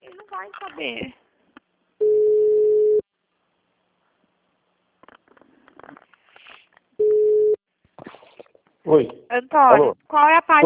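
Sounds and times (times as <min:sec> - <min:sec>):
speech: 0:00.4 - 0:01.2, 0:08.9 - 0:10.6
telephone busy tone after a dropped call: 0:02.0 - 0:03.0, 0:07.0 - 0:07.6.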